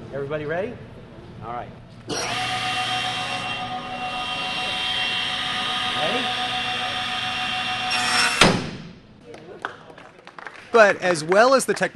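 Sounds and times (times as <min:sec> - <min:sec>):
speech: 0:00.1 - 0:02.6, 0:06.0 - 0:06.5, 0:10.7 - 0:11.9
table saw running: 0:02.1 - 0:08.6.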